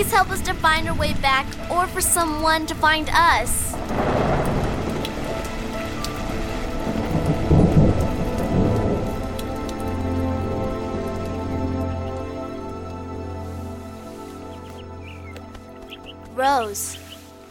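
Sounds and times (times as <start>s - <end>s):
speech: 0.0s - 4.2s, 16.4s - 17.0s
steady heavy rain hissing on surfaces: 0.0s - 17.4s
deep rolling thunder: 3.0s - 11.4s.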